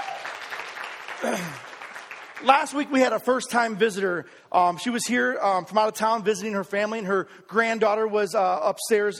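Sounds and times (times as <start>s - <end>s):
brief voice rising through the applause: 0.0s - 2.5s
room full of people clapping: 0.0s - 3.2s
speech: 1.2s - 1.7s, 2.4s - 9.1s.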